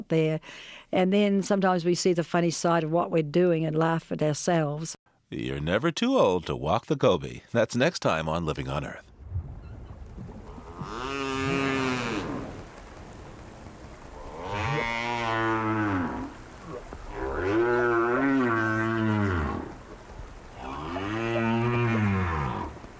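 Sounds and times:
speech: 0.0s - 9.1s
right whales snoring with deep droning moans: 9.2s - 12.6s, 14.2s - 19.8s, 20.5s - 22.9s.

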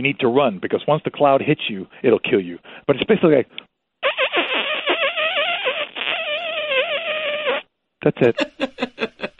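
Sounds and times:
speech: 0.0s - 3.7s, 8.0s - 9.2s
person vocally imitating a cheetah breaking wind: 4.0s - 7.7s
laughter: 8.2s - 9.3s.

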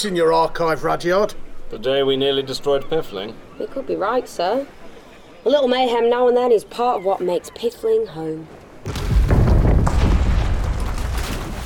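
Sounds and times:
speech: 0.0s - 4.8s, 5.4s - 9.0s
crackling debris from the boat explosion: 8.8s - 11.6s
giant boat exploding: 8.8s - 11.6s.

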